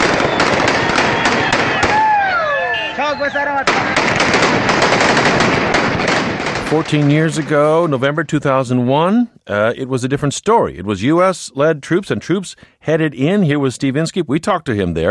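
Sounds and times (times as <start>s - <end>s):
automatic gunfire from armed fighters in the streets: 0.0s - 2.2s, 3.6s - 8.0s
armed fighters shouting in the streets: 0.8s - 4.0s
speech: 3.2s - 4.0s, 6.7s - 15.1s.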